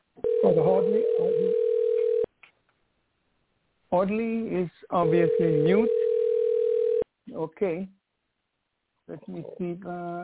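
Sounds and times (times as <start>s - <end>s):
telephone ringing in the background of a caller's line during a group call: 0.2s - 2.3s, 5.0s - 7.0s
speech: 0.5s - 1.7s, 3.9s - 6.1s, 7.3s - 8.0s, 9.1s - 10.2s.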